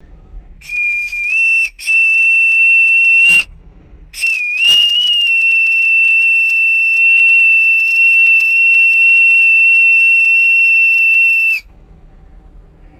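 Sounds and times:
boatswain pipe blowing a nautical call: 0.6 - 3.5, 4.2 - 11.6.

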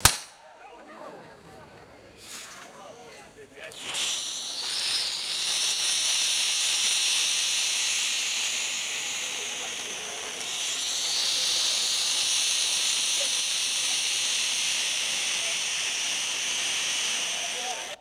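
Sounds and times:
spinning catherine wheel firework hissing: 0.0 - 0.4, 2.2 - 17.9
people chattering: 0.0 - 17.9.

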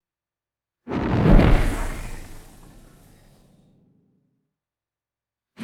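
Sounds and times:
flaming arrow whoosh: 1.0 - 3.4.

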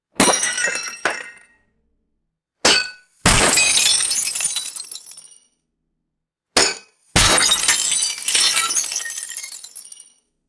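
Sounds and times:
heavy glass smashing on concrete: 0.2 - 1.4, 2.7 - 5.4, 6.6 - 10.2.

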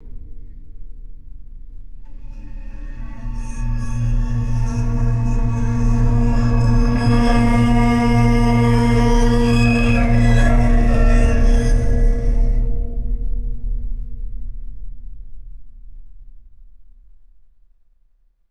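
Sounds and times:
dragging growl: 2.1 - 12.8
metallic screech: 2.1 - 12.9.

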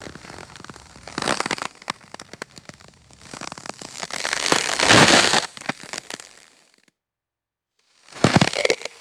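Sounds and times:
low pitched ice crackling and crunching: 0.0 - 6.5, 8.1 - 8.9.

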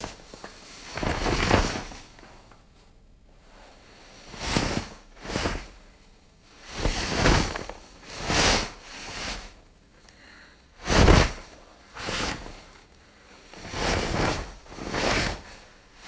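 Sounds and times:
heavy blanket and cloth rustling: 0.0 - 2.4, 3.6 - 9.6, 10.8 - 16.0.

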